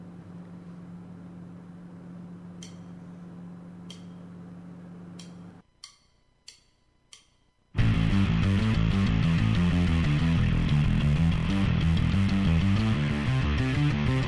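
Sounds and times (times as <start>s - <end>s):
bass guitar with flanger effect and gritty distortion: 7.8s - 14.2s.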